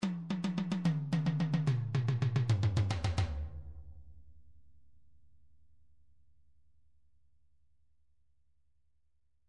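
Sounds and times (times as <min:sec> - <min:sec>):
individual MIDI tom drums: 0:00.0 - 0:03.5.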